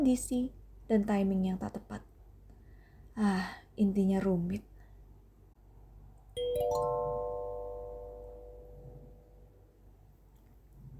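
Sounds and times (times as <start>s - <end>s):
speech: 0.0s - 2.1s, 3.2s - 4.7s, 6.4s - 7.1s
phone ringing with bell-like chime: 6.4s - 9.4s
low hum: 6.6s - 10.9s.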